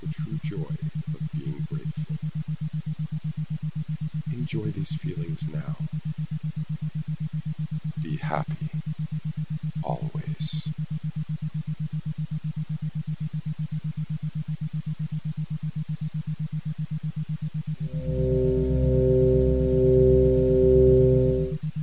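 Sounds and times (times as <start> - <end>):
higher sustained pure sine wave tones: 0.0 - 3.2, 4.2 - 6.0, 17.6 - 21.8
low steady pulsing electronic hum: 0.0 - 21.8
speech: 4.5 - 6.1, 8.1 - 8.9.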